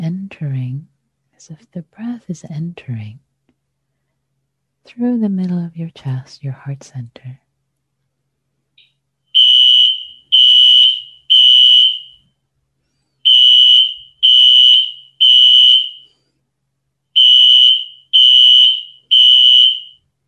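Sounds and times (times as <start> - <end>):
speech: 1.4 - 3.3, 4.8 - 7.4
loud fire alarm beeping: 8.8 - 12.2, 13.2 - 16.1, 17.2 - 20.0.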